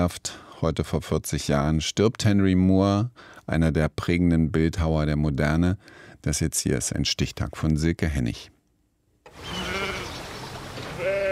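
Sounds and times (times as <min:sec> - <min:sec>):
speech: 0:00.0 - 0:08.6
steady open-air noise: 0:00.0 - 0:11.3
sheep bleating on a meadow in southern England: 0:09.4 - 0:10.2, 0:10.9 - 0:11.3.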